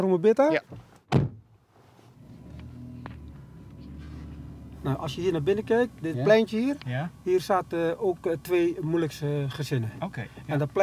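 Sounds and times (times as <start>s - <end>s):
speech: 0.0s - 1.2s, 4.8s - 10.8s
low hum of the vehicle interior: 0.6s - 10.8s
car door thudding shut: 0.7s - 1.5s.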